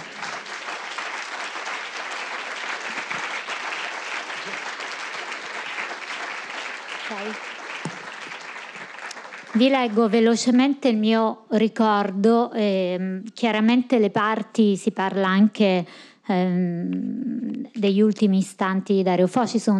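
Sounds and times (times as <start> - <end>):
applause from a sizable audience: 0.0 - 10.2
speech: 7.1 - 7.5, 9.6 - 19.7.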